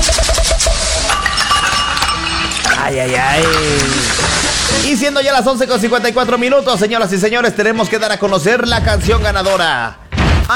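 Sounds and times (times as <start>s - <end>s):
large beer bottle clinking as a sound effect: 1.0s - 5.2s
speech: 2.9s - 10.5s.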